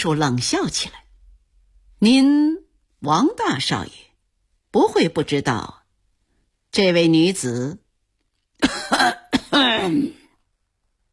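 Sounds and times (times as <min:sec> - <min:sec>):
speech: 0:00.0 - 0:01.0, 0:02.0 - 0:04.0, 0:04.7 - 0:05.8, 0:06.7 - 0:07.8, 0:08.6 - 0:10.2
man coughing: 0:08.6 - 0:10.2.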